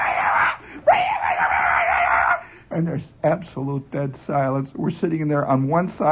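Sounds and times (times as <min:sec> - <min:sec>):
boy screaming and yelling in the woods by a grade school playground: 0:00.0 - 0:02.4
speech: 0:02.8 - 0:06.1.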